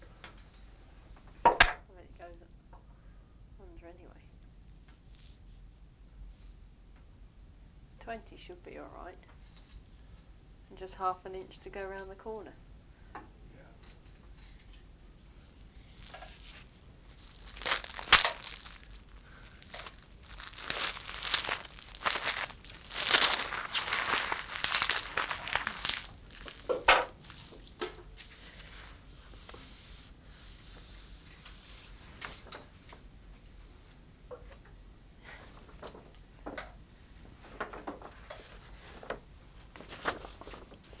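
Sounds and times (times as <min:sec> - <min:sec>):
speech: 0:03.7 - 0:04.3, 0:08.1 - 0:09.4, 0:10.7 - 0:12.6
multicoloured wrapping paper crinkling and rustling while something is wrapped: 0:15.8 - 0:29.7, 0:37.4 - 0:40.9
wrapping paper tearing: 0:16.0 - 0:26.8.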